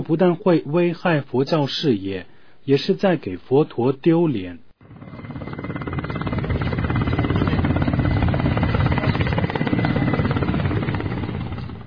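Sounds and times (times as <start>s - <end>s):
speech: 0.0s - 4.6s
helicopter flying with rotor blades chopping and engine whine: 4.8s - 11.8s.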